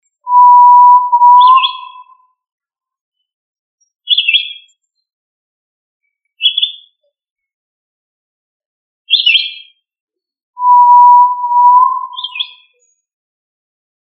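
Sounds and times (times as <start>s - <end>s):
Tinamou short high chirpy notes: 0.3s - 2.0s, 10.6s - 12.3s
Tinamou long level whistle: 0.3s - 2.2s, 10.6s - 12.4s.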